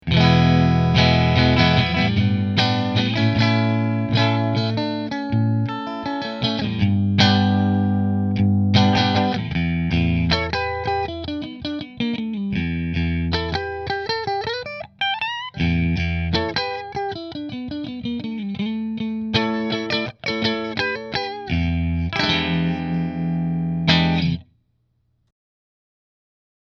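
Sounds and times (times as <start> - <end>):
Fender electric guitar with Nola Voodoo neck and middle pickups: 0.0 - 24.4.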